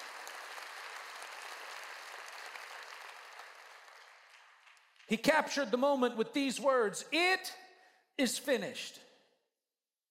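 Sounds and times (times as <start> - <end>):
large group applauding in praise: 0.0 - 5.2
speech: 5.1 - 7.6, 8.2 - 9.0.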